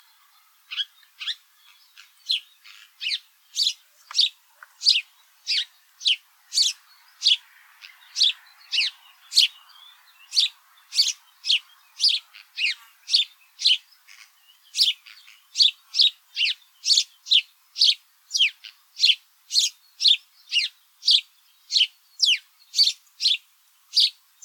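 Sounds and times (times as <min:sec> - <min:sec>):
house sparrow Passer domesticus chirping: 0:00.7 - 0:24.4.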